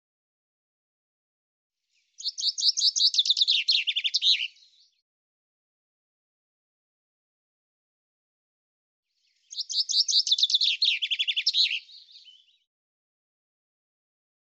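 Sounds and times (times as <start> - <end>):
Common chaffinch song: 1.9 - 5.0, 9.1 - 12.7.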